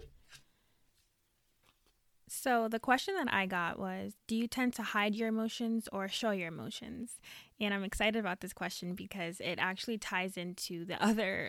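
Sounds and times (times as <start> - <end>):
question cards shuffled by hand: 0.0 - 0.4
speech: 2.3 - 11.4.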